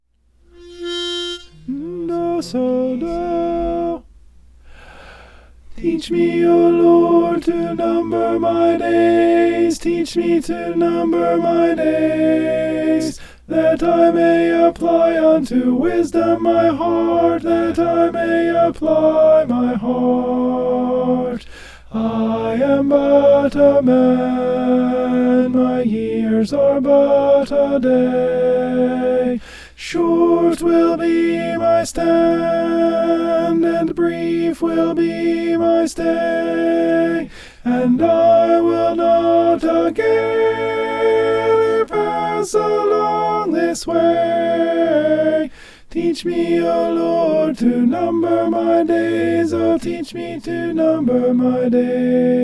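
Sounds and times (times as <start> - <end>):
alto voice singing a hymn: 0.5 - 4.1, 5.7 - 52.4.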